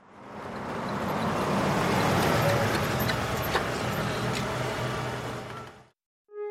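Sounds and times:
black car engine and road rumble pulling up and stopping: 0.0s - 6.0s.

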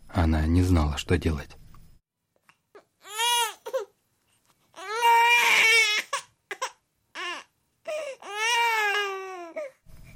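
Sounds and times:
speech: 0.3s - 1.6s
newborn baby crying: 2.7s - 4.0s, 4.7s - 9.8s.

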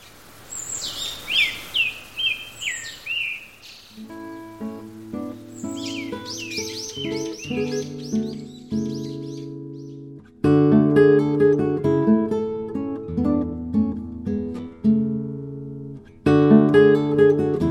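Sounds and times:
birds chirping outdoors: 0.0s - 10.2s
gentle tonal music: 4.0s - 17.6s.

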